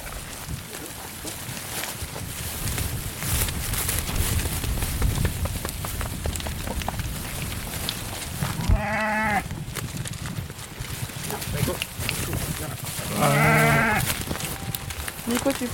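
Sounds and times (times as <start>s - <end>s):
barn noise and clatter: 0.0s - 15.7s
dairy ewes bleating: 8.6s - 9.4s, 13.0s - 14.1s.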